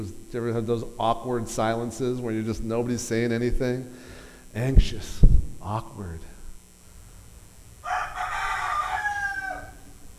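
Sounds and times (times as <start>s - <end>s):
speech: 0.0s - 6.3s
rooster crowing: 7.8s - 10.0s.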